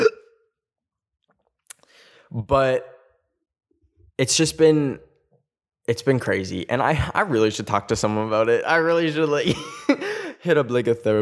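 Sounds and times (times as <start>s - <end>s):
hiccup: 0.0s - 0.5s
speech: 2.3s - 3.0s, 4.2s - 5.1s, 5.9s - 11.2s.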